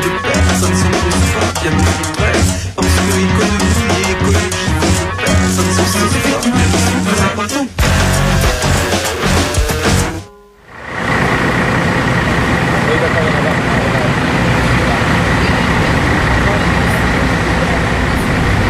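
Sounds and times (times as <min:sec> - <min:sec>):
indistinct voices: 0:00.0 - 0:18.6
tour coach engines idling at the Old Port in Marseille: 0:00.0 - 0:18.6.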